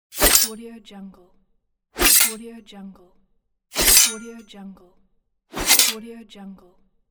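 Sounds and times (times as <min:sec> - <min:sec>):
dagger on metal: 0:00.1 - 0:00.6, 0:02.0 - 0:02.4, 0:03.8 - 0:04.4, 0:05.6 - 0:06.0.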